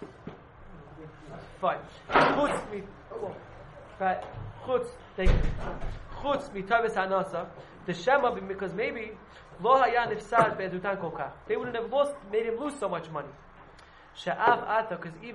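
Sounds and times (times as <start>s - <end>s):
speech: 1.6s - 13.5s, 14.2s - 15.3s
door closing with a low dull thud: 2.1s - 2.7s, 5.2s - 6.1s.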